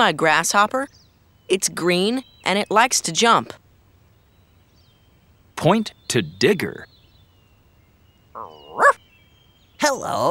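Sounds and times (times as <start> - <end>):
speech: 0.0 - 3.6, 5.6 - 6.9, 9.8 - 10.2
dog whining and barking: 8.4 - 9.0.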